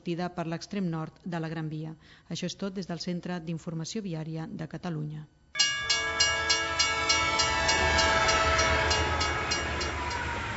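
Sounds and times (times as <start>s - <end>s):
speech: 0.0s - 5.4s
arriving train horn droning: 5.6s - 10.5s.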